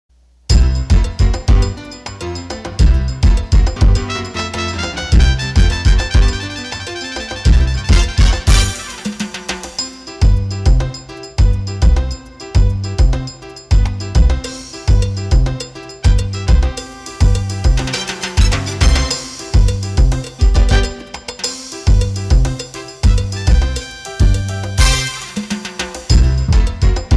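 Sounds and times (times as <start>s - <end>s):
salsa music: 0.5s - 27.1s.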